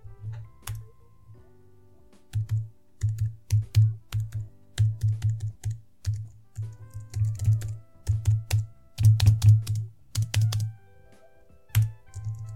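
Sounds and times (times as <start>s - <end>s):
typing on a low-profile non-mechanical laptop keyboard: 0.3s - 0.9s, 2.3s - 10.7s, 11.7s - 12.5s.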